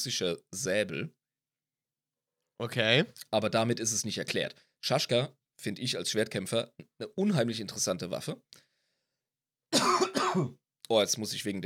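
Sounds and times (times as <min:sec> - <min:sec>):
speech: 0:00.0 - 0:01.2, 0:02.6 - 0:08.6, 0:09.7 - 0:11.6
harsh raspy coughs: 0:09.7 - 0:10.6.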